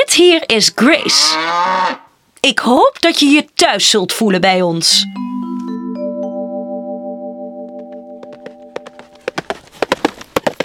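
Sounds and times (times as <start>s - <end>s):
speech: 0.1s - 5.4s
sustained musical chord: 5.0s - 9.2s
horse hooves clip-clopping as rider arrives: 7.8s - 10.6s.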